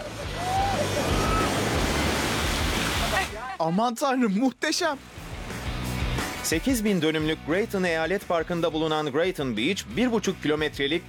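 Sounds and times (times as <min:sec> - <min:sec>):
lake waves splashing against a moving boat in a channel: 0:00.3 - 0:03.5
speech: 0:03.6 - 0:05.2, 0:06.4 - 0:11.0.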